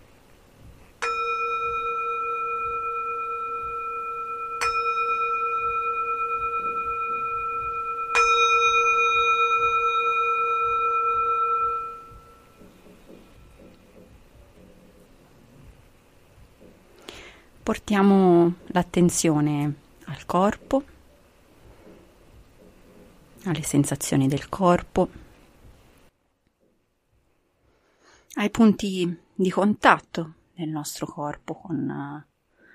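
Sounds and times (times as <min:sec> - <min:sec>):
quiet room noise: 0:00.0 - 0:29.6
meditation bell ringing: 0:01.0 - 0:13.7
speech: 0:17.7 - 0:20.9, 0:23.4 - 0:25.2, 0:28.4 - 0:32.3.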